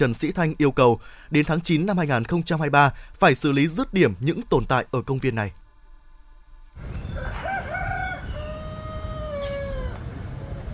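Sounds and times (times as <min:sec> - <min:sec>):
speech: 0:00.0 - 0:05.6
steady rumble of outdoor noise: 0:05.6 - 0:10.7
rooster crowing loudly: 0:07.0 - 0:10.5.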